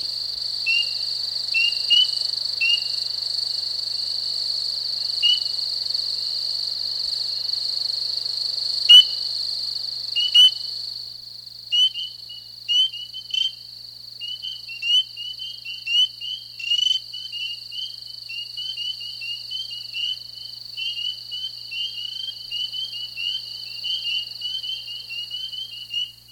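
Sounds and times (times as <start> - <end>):
spring peeper chorus mating call: 0.0 - 3.2, 5.2 - 5.6, 8.9 - 9.3, 10.2 - 10.7, 11.7 - 13.6, 14.2 - 26.3.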